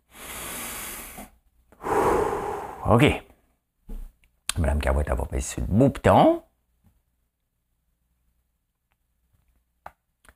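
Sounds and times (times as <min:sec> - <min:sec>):
slow deep breath drawn in before singing: 0:00.0 - 0:03.1
forceful exhale in a breathing exercise before singing: 0:00.1 - 0:03.0
speech: 0:02.9 - 0:03.3, 0:04.6 - 0:06.5.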